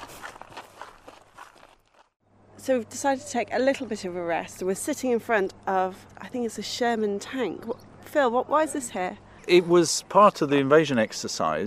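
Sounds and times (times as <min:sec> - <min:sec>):
soft scuffing footsteps of people walking outdoors near woodland: 0:00.0 - 0:02.2
speech: 0:02.6 - 0:11.6.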